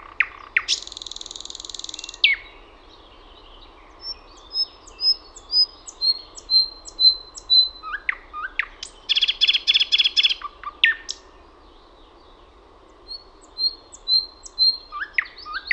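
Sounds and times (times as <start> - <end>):
thrush nightingale singing: 0.0 - 15.7.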